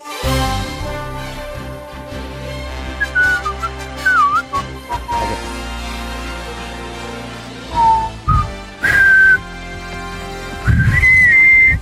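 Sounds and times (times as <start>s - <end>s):
steady instrumental backing: 0.0s - 11.8s
whistled news-style jingle introducing a news segment: 3.0s - 5.4s, 7.7s - 9.4s, 10.6s - 11.8s.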